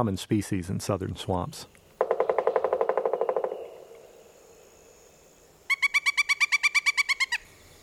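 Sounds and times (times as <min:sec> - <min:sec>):
speech: 0:00.0 - 0:01.8
pileated woodpecker drumming: 0:01.7 - 0:07.5.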